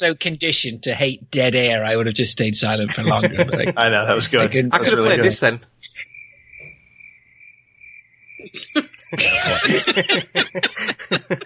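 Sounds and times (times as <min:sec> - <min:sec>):
speech: 0:00.0 - 0:06.0, 0:08.4 - 0:11.4
loud laughter: 0:02.9 - 0:03.8, 0:08.5 - 0:11.4
cricket chirping: 0:05.4 - 0:10.8.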